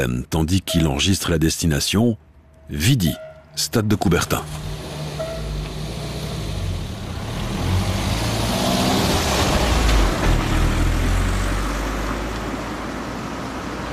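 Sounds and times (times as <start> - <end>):
speech: 0.0 - 4.7
taxi car driving past with engine rumble and tire noise: 4.3 - 13.9.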